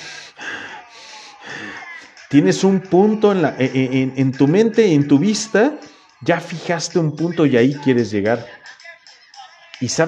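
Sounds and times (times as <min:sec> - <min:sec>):
voice imitating a motorcycle racer's heavy breathing inside a helmet: 0:00.0 - 0:02.4
speech: 0:01.6 - 0:08.6, 0:09.8 - 0:10.0.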